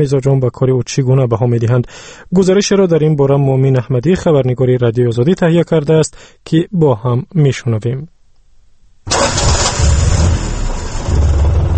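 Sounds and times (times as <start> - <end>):
speech: 0.0 - 8.1
old Soviet car engine cranking and idling, taxi: 9.1 - 11.7.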